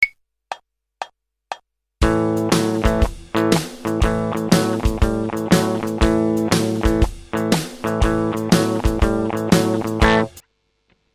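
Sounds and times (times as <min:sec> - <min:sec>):
spread blues rhythm guitar riff: 0:02.0 - 0:10.4.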